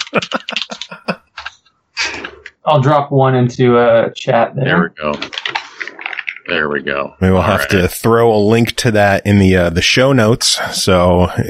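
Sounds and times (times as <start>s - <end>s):
laughter: 0.0s - 1.4s, 7.2s - 8.8s
loud typing on a computer keyboard: 0.0s - 1.5s, 5.1s - 6.5s
speech: 0.2s - 0.6s, 2.7s - 5.3s, 6.5s - 11.4s.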